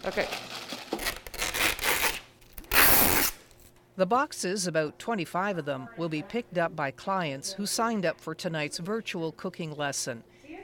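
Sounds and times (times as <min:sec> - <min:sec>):
speech: 0:00.0 - 0:00.6, 0:04.0 - 0:10.6
packing tape pulled off the roll to seal boxes of produce: 0:00.1 - 0:03.7.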